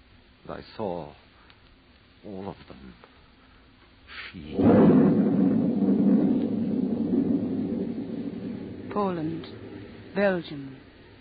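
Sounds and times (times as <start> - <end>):
speech: 0.5 - 1.2, 2.2 - 3.2, 4.3 - 5.6, 9.0 - 9.6, 10.2 - 10.8
heavy thunder crash with deep sustained rumble: 4.4 - 11.1.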